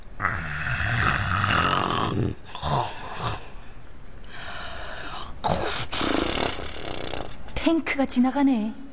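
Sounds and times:
loud snoring in a six-bed hospital ward: 0:00.2 - 0:03.4, 0:05.5 - 0:07.4
speech: 0:07.7 - 0:08.8.

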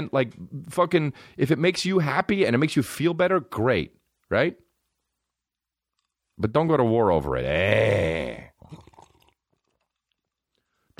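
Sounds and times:
speech: 0:00.0 - 0:04.6, 0:06.4 - 0:08.8
slurp of iced coffee from a cup: 0:08.0 - 0:10.6.

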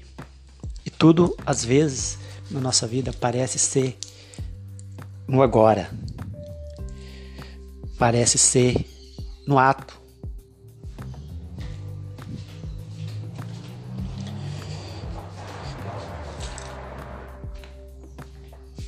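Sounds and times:
speech: 0:01.0 - 0:04.0, 0:05.3 - 0:06.0, 0:08.0 - 0:08.9, 0:09.5 - 0:10.0
car passing by outside with engine rumble and road hiss: 0:12.3 - 0:17.5.

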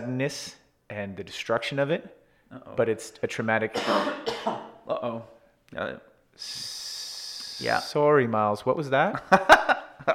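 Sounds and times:
speech: 0:00.1 - 0:06.8, 0:07.6 - 0:10.1
harsh violent coughing from someone with a tickly throat during illness: 0:03.7 - 0:04.8
steady hiss: 0:06.3 - 0:08.2.

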